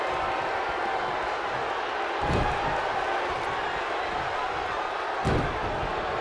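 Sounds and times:
constant roar of crowd noise at a pro wrestling tag match: 0.0s - 6.2s
heavy body impacts from a wrestling belly-to-belly slam: 5.2s - 5.8s.

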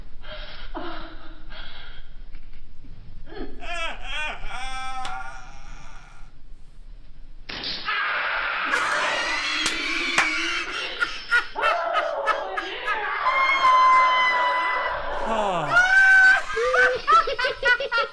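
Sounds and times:
person crying in pain as a spiky ball is shot into them: 3.4s - 6.3s, 15.2s - 17.0s
laughter: 8.7s - 18.1s.

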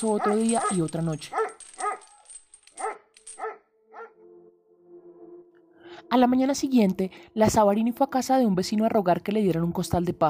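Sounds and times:
speech: 0.0s - 1.4s, 6.1s - 10.2s
dog barking: 0.2s - 2.2s, 2.8s - 4.2s.

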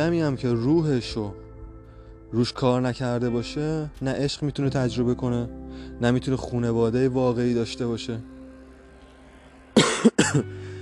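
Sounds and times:
speech: 0.0s - 1.4s, 2.3s - 8.3s, 10.0s - 10.6s
harsh coughs: 9.8s - 10.5s.

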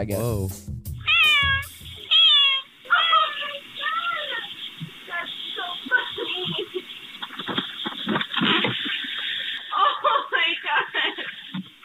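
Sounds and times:
speech: 0.0s - 0.9s
cat meowing through a doorbell camera microphone: 1.0s - 6.6s
laughter: 4.2s - 11.6s.

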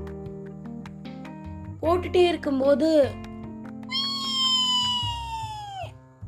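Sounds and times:
speech: 1.8s - 3.2s
voice imitating a pressure cooker whistling in a kitchen: 3.9s - 5.9s.

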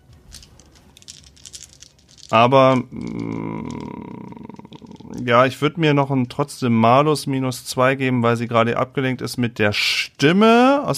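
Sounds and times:
dice clattering: 0.0s - 5.5s
speech: 2.3s - 4.0s, 5.2s - 10.9s.

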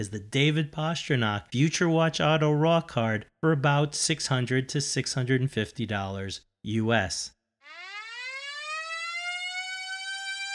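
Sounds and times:
speech: 0.0s - 7.4s
loud harmonically rich siren blaring: 7.6s - 10.5s.

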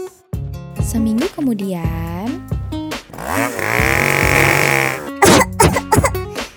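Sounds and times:
speech: 0.8s - 2.5s
small engine of a smoke-spewing fogging machine running: 3.1s - 5.2s
fogging machine engine coughing: 3.2s - 6.2s.

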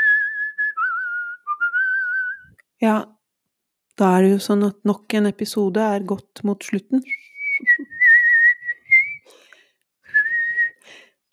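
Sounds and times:
person whistling a melody: 0.0s - 2.6s, 7.1s - 9.3s, 10.1s - 10.8s
speech: 2.8s - 3.1s, 4.0s - 7.4s.

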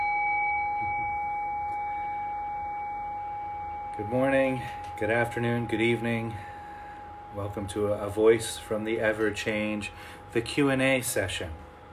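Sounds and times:
bell ringing: 0.0s - 6.5s
speech: 4.0s - 6.5s, 7.4s - 11.6s.

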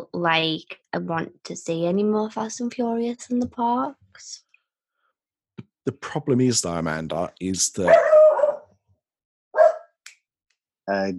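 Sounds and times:
speech: 0.2s - 4.4s, 5.8s - 8.2s, 10.9s - 11.1s
dog barking: 7.8s - 8.8s, 9.6s - 10.0s.

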